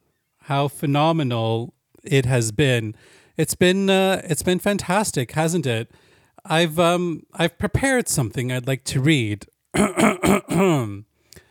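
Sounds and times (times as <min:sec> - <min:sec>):
speech: 0:00.5 - 0:11.1
man clearing his throat before reading aloud: 0:09.8 - 0:11.0.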